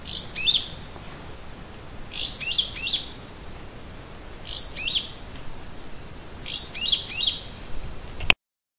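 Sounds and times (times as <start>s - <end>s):
yellow-green grosbeak Caryothraustes canadensis singing: 0.0s - 1.4s, 2.1s - 7.7s.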